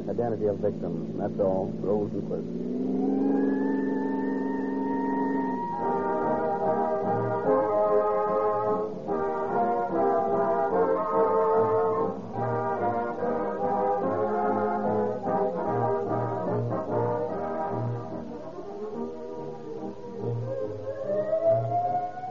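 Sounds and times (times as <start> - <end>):
speech: 0.1 - 3.2
vehicle engine revving: 0.6 - 7.5
emergency siren of a police car, ambulance or fire engine wailing: 2.5 - 22.2.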